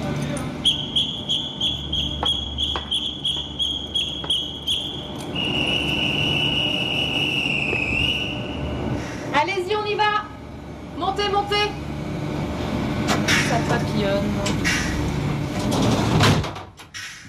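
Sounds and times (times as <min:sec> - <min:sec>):
low rumbling noise: 0:00.0 - 0:17.2
shrill train departure whistle blown for a night train departure: 0:00.6 - 0:08.7.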